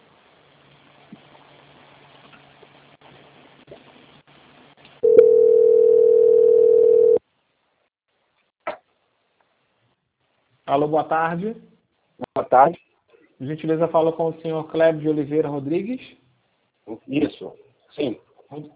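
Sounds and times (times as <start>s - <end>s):
telephone line tone during call transfer: 5.0s - 7.2s
speech: 10.7s - 11.7s, 12.4s - 16.2s, 16.9s - 18.7s.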